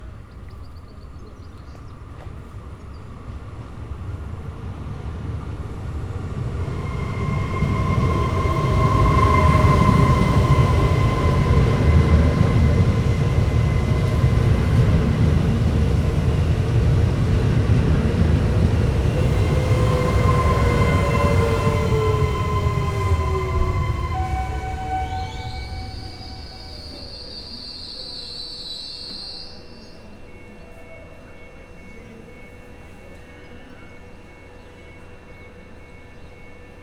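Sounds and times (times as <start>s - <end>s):
train arriving: 0.0s - 36.8s.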